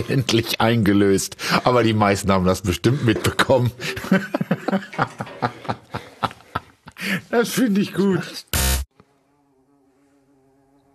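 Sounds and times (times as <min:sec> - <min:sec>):
speech: 0:00.0 - 0:05.1, 0:07.3 - 0:08.6
laughter: 0:02.9 - 0:07.3
bumblebee buzzing around the studio: 0:08.5 - 0:10.9.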